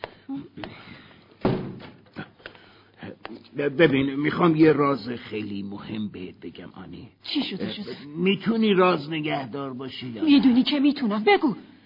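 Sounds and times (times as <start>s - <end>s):
door pushed shut with a heavy thud: 1.4s - 2.0s
speech: 3.6s - 11.7s.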